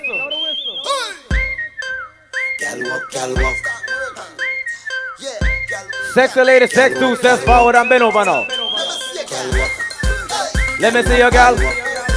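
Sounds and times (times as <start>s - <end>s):
whistle blasts: 0.0s - 12.1s
thumping beats: 1.0s - 12.1s
voices chanting: 2.5s - 12.1s
speech: 2.7s - 3.7s, 6.1s - 8.6s, 10.8s - 11.8s.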